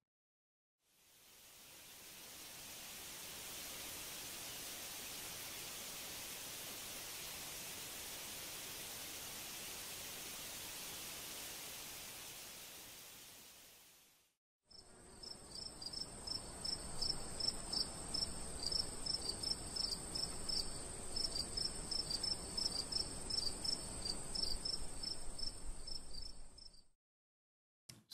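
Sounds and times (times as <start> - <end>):
broadband hiss: 1.0 - 14.0
cricket chirping: 14.7 - 26.9.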